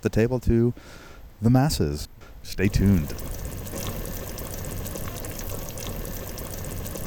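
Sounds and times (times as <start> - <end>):
speech: 0.0 - 3.6
pot of chili bubbling on a stove: 2.6 - 7.0.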